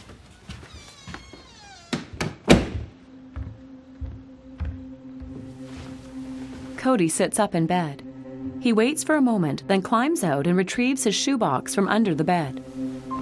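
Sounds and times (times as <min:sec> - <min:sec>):
bedroom door being shut: 0:00.8 - 0:03.0
speech: 0:06.8 - 0:08.0, 0:08.6 - 0:12.8.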